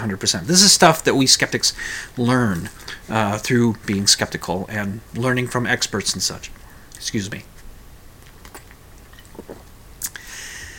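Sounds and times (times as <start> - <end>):
speech: 0.0 - 7.5
soft wet mouth clicks: 8.2 - 10.2
brief swallow: 8.5 - 10.2
light airy slurp: 8.5 - 10.2
sipping from a drink: 8.5 - 10.3.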